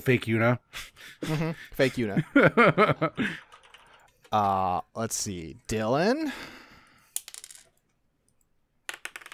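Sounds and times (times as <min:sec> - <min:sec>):
speech: 0:00.0 - 0:03.5, 0:04.3 - 0:06.6
die rattling across a table and falling off: 0:07.2 - 0:07.8.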